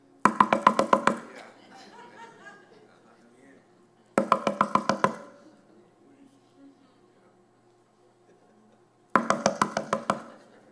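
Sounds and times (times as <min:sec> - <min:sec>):
knocking on a surface: 0:00.3 - 0:01.3, 0:04.2 - 0:05.4, 0:09.2 - 0:10.4
people murmuring: 0:01.2 - 0:04.2, 0:05.0 - 0:09.0
people laughing: 0:01.3 - 0:04.2, 0:08.0 - 0:08.9, 0:10.1 - 0:10.6.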